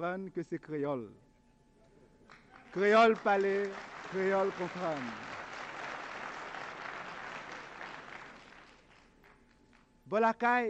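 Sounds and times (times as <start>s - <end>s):
speech: 0.0s - 1.3s, 2.8s - 5.3s, 10.1s - 10.6s
audience applause: 2.5s - 9.4s.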